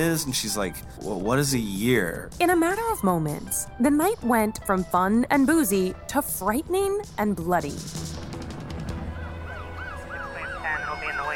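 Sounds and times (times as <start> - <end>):
speech: 0.0 - 8.3
ambulance siren wailing: 9.0 - 11.3.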